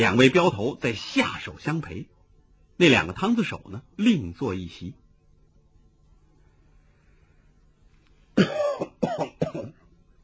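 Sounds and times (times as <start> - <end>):
speech: 0.0 - 2.2, 2.8 - 5.0
old man coughing in an inner hall: 8.4 - 9.8.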